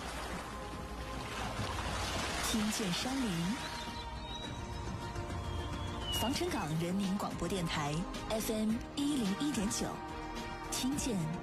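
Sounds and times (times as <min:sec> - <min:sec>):
ocean waves washing: 0:00.0 - 0:07.6
speech: 0:02.5 - 0:03.8, 0:06.2 - 0:10.1, 0:10.8 - 0:11.4.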